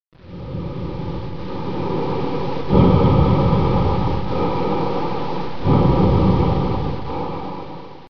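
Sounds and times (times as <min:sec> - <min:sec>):
breathing: 0:00.2 - 0:08.0.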